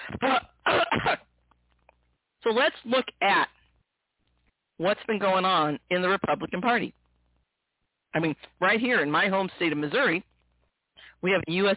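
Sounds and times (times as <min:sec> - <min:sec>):
harsh raspy coughs: 0:00.0 - 0:01.3
speech: 0:02.5 - 0:03.5, 0:04.8 - 0:07.0, 0:08.1 - 0:10.3, 0:11.2 - 0:11.7.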